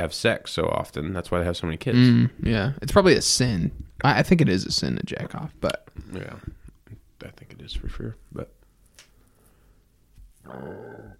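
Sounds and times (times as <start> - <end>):
speech: 0.0 - 6.6, 7.6 - 8.6, 10.5 - 11.1
deep rumbling burp: 10.5 - 11.1.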